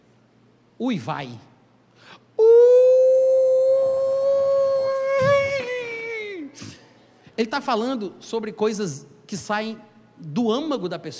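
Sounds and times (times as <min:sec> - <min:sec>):
speech: 0:00.8 - 0:01.5, 0:07.4 - 0:11.1
voice imitating a deep anguished wail: 0:02.4 - 0:06.6.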